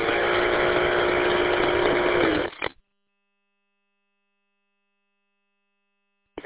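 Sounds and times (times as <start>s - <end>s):
small engine with a CVT transmission droning: 0.0s - 2.7s.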